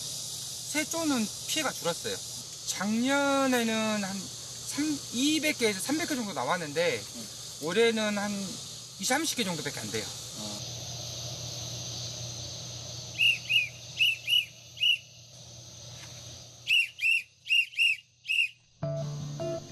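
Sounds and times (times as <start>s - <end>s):
speech: 0.7s - 10.5s
whistle blown in short sharp toots to call cats: 13.1s - 15.1s, 16.6s - 18.7s.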